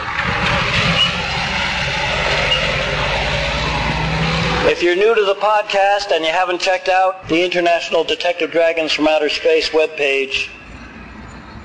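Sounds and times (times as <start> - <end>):
trucks rumbling past with deep engine drone and road noise: 0.0 - 11.6
speech: 4.8 - 10.6.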